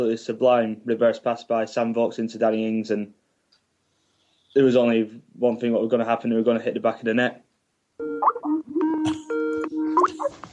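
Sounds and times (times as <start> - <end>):
speech: 0.0 - 3.2, 4.5 - 7.4
bright bubbly Skype call ringtone: 8.0 - 10.5.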